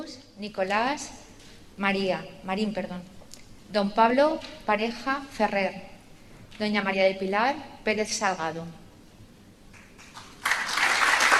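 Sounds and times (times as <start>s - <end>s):
speech: 0.1s - 1.2s, 1.8s - 5.9s, 6.6s - 8.8s
audience applause at a degree ceremony: 10.0s - 11.3s.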